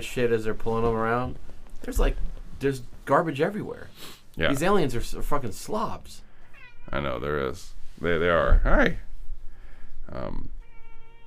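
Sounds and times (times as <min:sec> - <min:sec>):
speech: 0:00.0 - 0:06.2, 0:06.9 - 0:09.1, 0:10.1 - 0:10.6
cat meowing: 0:06.4 - 0:07.2, 0:10.6 - 0:11.2.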